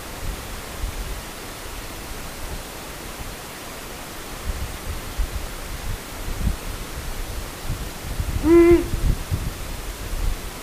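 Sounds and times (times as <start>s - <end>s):
soft hiss: 0.0s - 10.6s
Ural owl uttering a deep hollow hoot: 8.4s - 9.2s.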